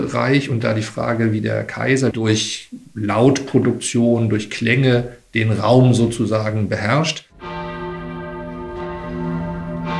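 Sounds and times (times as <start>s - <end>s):
speech: 0.0s - 7.3s
church bells ringing: 7.3s - 9.9s.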